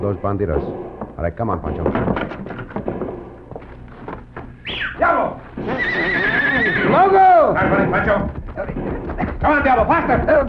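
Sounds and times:
speech: 0.0 - 2.5, 5.0 - 10.4
horse whinnying: 5.6 - 8.1.

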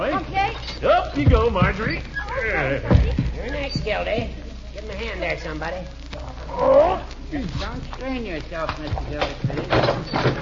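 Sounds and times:
horse hooves stamping and clip-clopping: 0.4 - 4.4, 8.4 - 10.4
speech: 1.2 - 3.1, 3.7 - 10.4.

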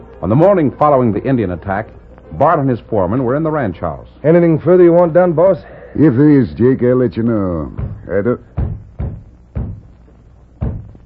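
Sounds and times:
speech: 0.2 - 8.6
feeble dull knocks on a wooden ranch house door: 7.7 - 10.0, 10.6 - 11.0.

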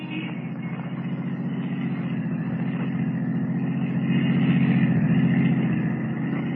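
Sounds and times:
taxi cab engine rumbling while driving: 0.0 - 6.5.

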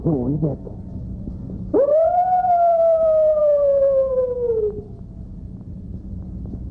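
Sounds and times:
speech: 0.1 - 0.9
person imitating a coyote howl: 1.7 - 4.9.

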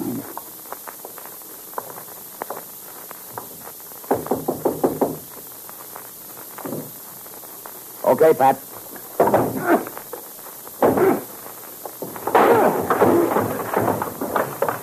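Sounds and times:
faint hiss: 0.0 - 14.8
firm raps on a door: 4.1 - 5.2, 9.2 - 9.6
speech: 8.1 - 8.7
door on the top floor of a building being kicked in: 9.2 - 9.9, 10.8 - 11.3, 12.0 - 14.8.

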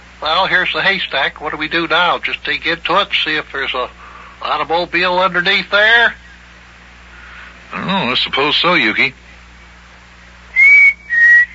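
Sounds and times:
speech: 0.2 - 6.2, 7.7 - 9.2
person whistling a signal in short high-pitched blasts: 10.5 - 11.5.

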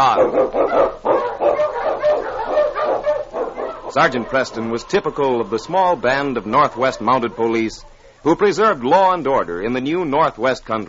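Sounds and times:
speech: 0.0 - 1.1, 3.9 - 10.8
pack of husky sled dogs barking and yipping excitedly: 0.0 - 8.7.

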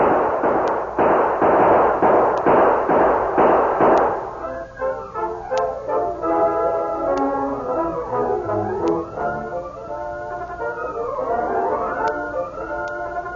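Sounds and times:
gunfire in a radio western drama: 0.0 - 4.4
ringing tonal sounds: 4.3 - 13.3.

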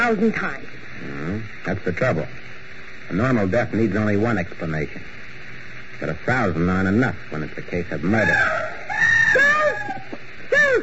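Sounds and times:
speech: 0.0 - 5.2, 6.0 - 9.6
person screaming in a room down the hall: 8.2 - 10.8.

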